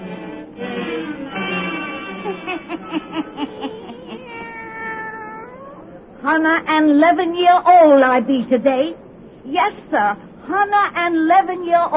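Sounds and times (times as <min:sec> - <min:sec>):
laughter: 0:01.4 - 0:04.4
black cat meowing and yowling: 0:03.8 - 0:05.9
speech: 0:06.3 - 0:11.9.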